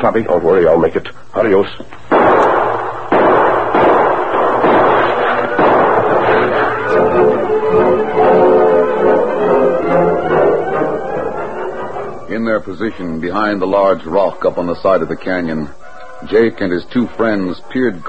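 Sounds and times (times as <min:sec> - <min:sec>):
speech: 0:00.0 - 0:02.0, 0:12.3 - 0:18.0
gunshots exchanged in a canyon: 0:02.1 - 0:11.0.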